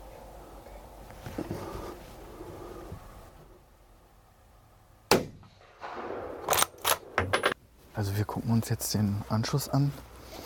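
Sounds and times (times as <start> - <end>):
gunshot at a young roe deer during a hunt: 5.1 - 6.7
speech: 8.0 - 10.1.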